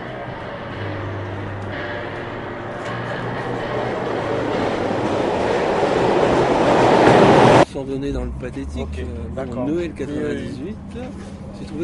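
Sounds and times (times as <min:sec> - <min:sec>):
train running along railway tracks: 0:00.0 - 0:08.4
speech: 0:08.0 - 0:11.8.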